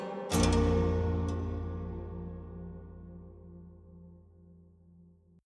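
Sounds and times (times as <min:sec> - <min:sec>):
haunted strings in chromatic descent: 0:00.3 - 0:04.1.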